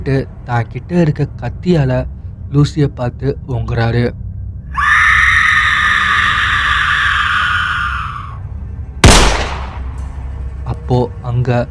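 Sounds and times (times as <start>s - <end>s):
speech: 0.0s - 4.2s, 10.9s - 11.6s
low rumble: 0.0s - 11.6s
long shrill scream-like wail: 4.7s - 8.4s
single loud sharp gunshot sound effect: 9.0s - 10.0s.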